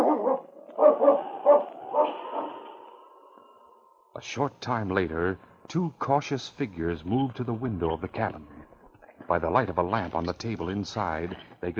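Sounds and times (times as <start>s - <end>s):
dog barking gruffly: 0.0s - 2.6s
speech: 4.2s - 8.6s, 9.3s - 11.7s.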